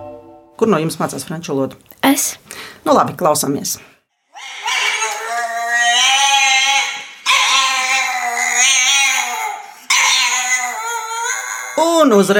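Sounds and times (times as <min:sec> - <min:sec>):
speech: 0:00.6 - 0:03.9, 0:12.0 - 0:12.3
French bulldog whining howls: 0:04.4 - 0:12.0.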